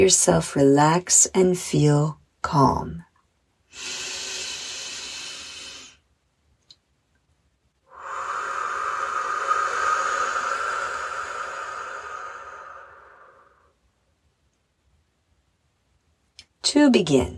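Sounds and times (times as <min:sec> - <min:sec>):
speech: 0:00.0 - 0:03.1, 0:16.6 - 0:17.3
deep breathing in through the nose and out through the mouth: 0:03.7 - 0:06.0, 0:07.9 - 0:13.8.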